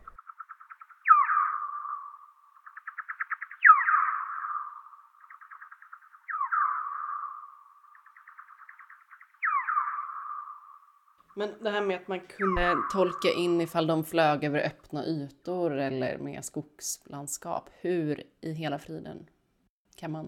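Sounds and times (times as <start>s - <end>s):
parti-coloured bat social calls: 0.0s - 10.9s
speech: 11.4s - 19.3s, 20.0s - 20.2s.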